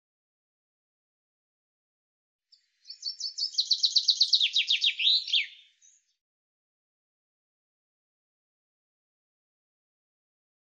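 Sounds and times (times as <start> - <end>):
common chaffinch song: 2.5 - 6.2.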